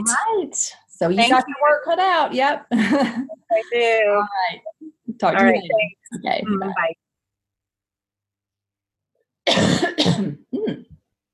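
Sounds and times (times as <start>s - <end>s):
speech: 0.0s - 7.0s, 9.5s - 10.9s
person clearing throat from a tickle in the throat: 9.4s - 11.0s
person coughing from a tickle in the throat: 9.5s - 11.0s.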